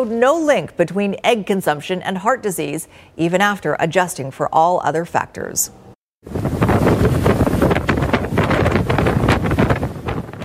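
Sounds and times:
speech: 0.0 - 6.4
extremely strong wind at mountain observatory buffeting microphone: 6.2 - 10.4.

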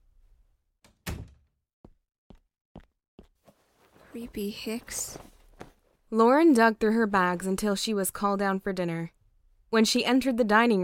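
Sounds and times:
man closing a door with a solid thump: 0.9 - 1.5
speech: 4.1 - 5.3, 6.1 - 10.8.

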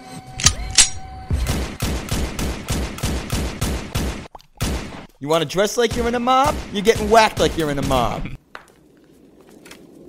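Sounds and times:
rapid gunshots in a video game: 1.4 - 5.0, 5.9 - 8.2
speech: 5.2 - 8.4.

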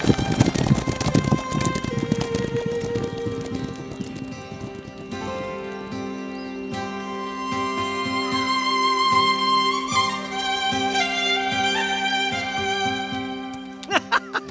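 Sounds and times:
horse galloping with hooves clip-clopping: 0.0 - 5.8
sustained music: 0.0 - 14.5
laughter: 13.8 - 14.5.

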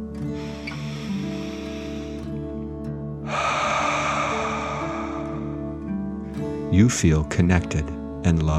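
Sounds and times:
child deep breathing in and out during a calming meditation: 0.1 - 6.7
steady sustained tonal backing: 3.3 - 6.4
speech: 6.7 - 8.5.

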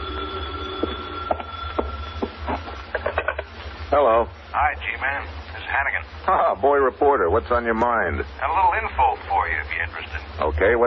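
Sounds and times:
telephone ringing with a thin sustained tone: 0.0 - 3.0
low droning hum: 0.0 - 10.8
speech: 3.9 - 10.8.

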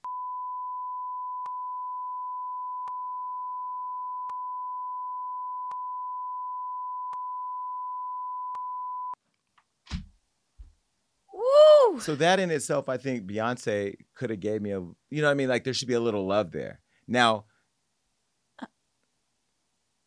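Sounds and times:
censor bleep tone: 0.0 - 9.2
speech: 12.0 - 17.5.

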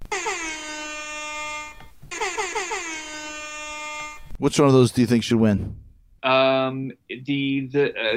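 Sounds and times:
DJ air horn blasts: 0.0 - 4.4
speech: 4.4 - 8.1.

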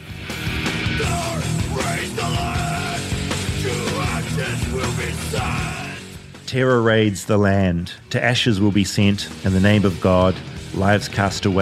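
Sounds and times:
loud dense distorted guitars: 0.0 - 11.6
pounding drums: 0.5 - 6.1
harsh screamed vocals: 0.8 - 6.2
speech: 6.5 - 11.6.

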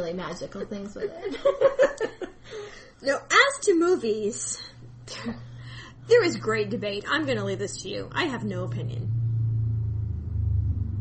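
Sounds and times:
speech: 0.0 - 5.5, 6.1 - 9.2
laughter: 1.0 - 2.8
motorcycle rumbling along the street: 5.3 - 11.0.

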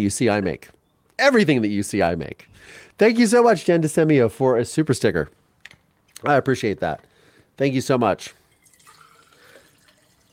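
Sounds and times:
speech: 0.0 - 8.4
water pouring into a tumbler: 8.5 - 10.3.

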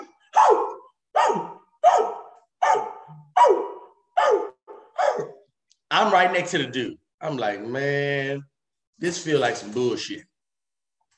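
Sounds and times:
person on stage imitating dog barks: 0.0 - 5.4
speech: 5.2 - 10.3.

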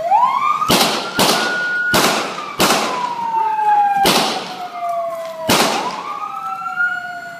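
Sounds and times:
wailing siren: 0.0 - 7.3
gunshots: 0.7 - 3.2, 4.0 - 4.7, 5.5 - 6.1.

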